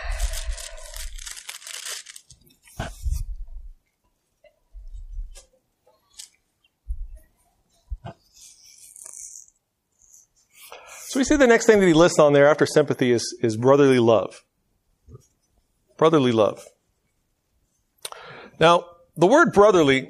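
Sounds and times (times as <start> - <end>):
thin Bible pages rustling and flipping: 0.0 - 3.7, 4.9 - 6.4
speech: 11.1 - 14.5, 16.0 - 16.7, 18.6 - 20.0.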